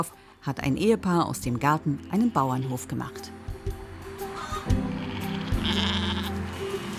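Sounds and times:
speech: 0:00.0 - 0:03.4
light outdoor farmyard background in warm weather: 0:00.0 - 0:06.9
sheep guarding chickens bleating on a small farm in Neuendorf on the Gnitz peninsula: 0:04.4 - 0:06.4.

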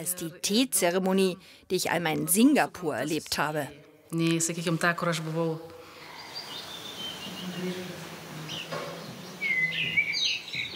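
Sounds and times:
speech: 0:00.0 - 0:05.8, 0:07.5 - 0:08.0
bird chirps and calls in a hotel building: 0:06.0 - 0:10.7.

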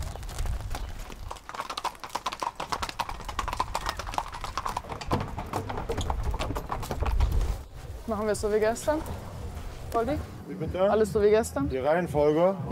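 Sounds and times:
several horses' hooves clopping on a hard promenade surface: 0:00.0 - 0:11.2
speech: 0:08.1 - 0:09.2, 0:09.9 - 0:12.7.

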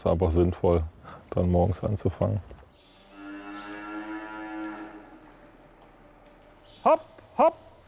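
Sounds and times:
speech: 0:00.0 - 0:02.6, 0:06.8 - 0:07.6
cow mooing in a barn: 0:02.9 - 0:05.4.

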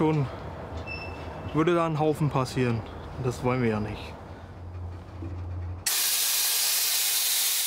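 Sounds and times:
speech: 0:00.0 - 0:00.5, 0:01.5 - 0:04.2
low mechanical rumble: 0:02.8 - 0:05.9
air hissing out of freight train brakes: 0:05.9 - 0:07.6.

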